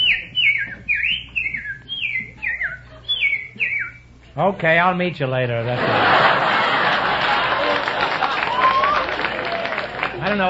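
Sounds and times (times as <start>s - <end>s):
person whistling a bird call: 0.0s - 4.0s
speech: 4.4s - 6.5s
laughter: 5.6s - 10.4s.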